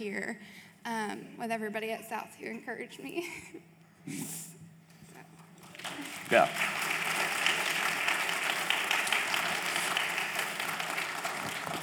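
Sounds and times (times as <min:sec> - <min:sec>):
speech: 0:00.0 - 0:04.6, 0:05.8 - 0:07.0
audience applause: 0:05.6 - 0:11.8.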